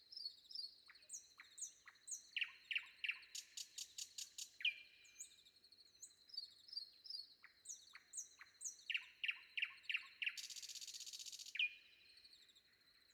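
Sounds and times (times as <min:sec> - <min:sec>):
common nightingale singing before dawn: 0:00.0 - 0:13.1.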